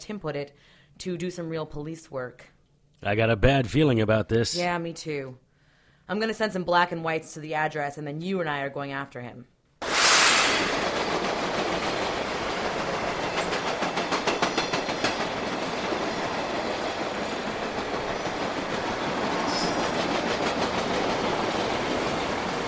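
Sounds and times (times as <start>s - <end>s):
speech: 0.0s - 5.4s, 6.1s - 9.5s
hissing surges: 9.8s - 10.8s
train rolling along railroad tracks: 9.8s - 22.6s
train wheels clickety-clack: 10.8s - 22.6s.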